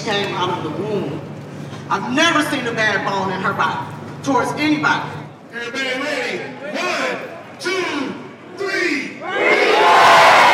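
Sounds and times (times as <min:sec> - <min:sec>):
speech: 0:00.0 - 0:01.3, 0:01.9 - 0:10.2
large crowd shouting: 0:06.4 - 0:10.5
large crowd cheering as balloons are released for a birthday: 0:09.2 - 0:10.5.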